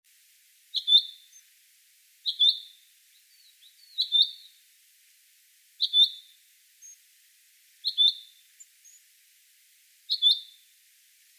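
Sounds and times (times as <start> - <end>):
common chaffinch Fringilla coelebs soft chirps: 0.7 - 1.5, 2.2 - 4.6, 5.8 - 7.1, 7.8 - 9.1, 10.1 - 10.8.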